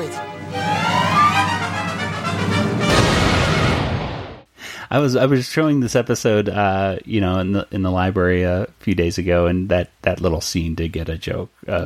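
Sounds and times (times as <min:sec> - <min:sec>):
sustained tonal buzz: 0:00.0 - 0:04.4
grenade explosion: 0:01.4 - 0:04.5
speech: 0:04.9 - 0:11.8.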